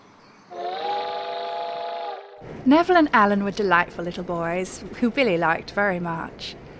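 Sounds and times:
steam train whistle as train departs: 0.5 - 2.4
speech: 2.6 - 6.6.

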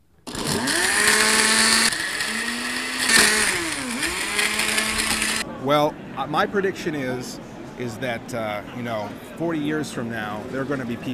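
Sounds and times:
blender puréeing ingredients to a smooth, creamy consistency: 0.3 - 5.4
speech: 5.7 - 11.1.

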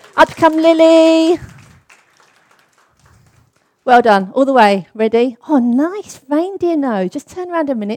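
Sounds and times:
audience applause: 0.0 - 3.8
speech: 0.2 - 1.5, 3.9 - 7.9.

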